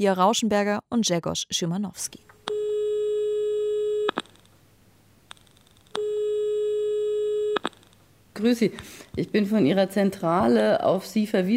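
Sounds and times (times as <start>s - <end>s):
speech: 0.0s - 2.4s, 8.4s - 11.5s
ringback tone of an outgoing phone call: 2.5s - 4.2s, 6.0s - 7.8s.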